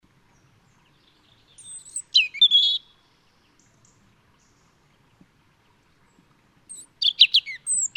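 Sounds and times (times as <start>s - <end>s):
European robin Erithacus rubecula singing high twittering notes and thin whistles: 0.3s - 4.9s, 6.0s - 7.9s.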